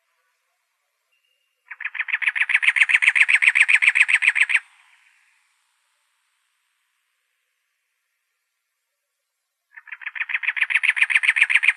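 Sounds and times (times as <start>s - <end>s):
cactus wren churring in Arizona: 1.6s - 5.4s, 9.7s - 11.7s.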